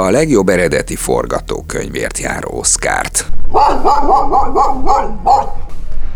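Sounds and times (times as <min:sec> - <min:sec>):
speech: 0:00.0 - 0:05.8
dog barking with high yappy barks: 0:03.6 - 0:05.7.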